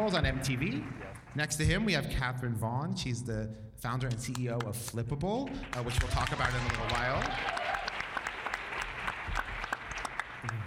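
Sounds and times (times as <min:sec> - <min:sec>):
audience applause: 0:00.0 - 0:01.6, 0:05.6 - 0:10.6
speech: 0:00.0 - 0:07.6.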